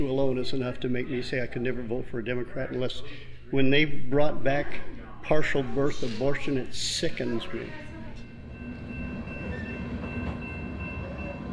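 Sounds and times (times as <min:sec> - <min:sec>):
speech: 0:00.0 - 0:07.9
faint metallic squeals of freight train: 0:05.9 - 0:11.5
freight train rolling through a town: 0:07.3 - 0:11.5.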